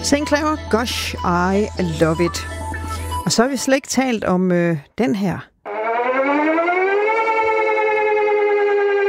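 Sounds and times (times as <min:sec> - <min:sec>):
speech: 0:00.1 - 0:02.6, 0:03.3 - 0:05.5
civil defense warning siren wailing: 0:05.6 - 0:09.0.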